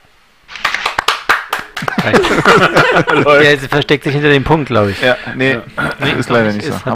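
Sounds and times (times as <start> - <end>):
scattered audience applause: 0.5 - 2.9
laughter: 1.8 - 5.0
speech: 2.0 - 6.9.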